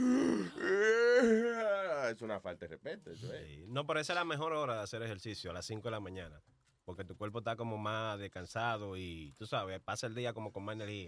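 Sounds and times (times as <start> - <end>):
person imitating a long exaggerated yawn: 0.0 - 1.7
speech: 2.2 - 11.0.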